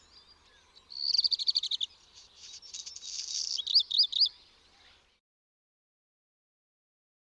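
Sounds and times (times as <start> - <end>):
bird singing: 0.0 - 5.2.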